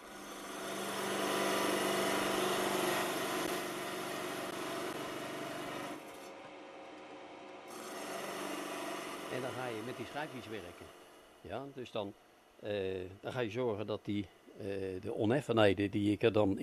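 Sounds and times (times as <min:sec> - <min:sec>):
sawing machine running: 0:00.0 - 0:12.0
speech: 0:09.3 - 0:16.6.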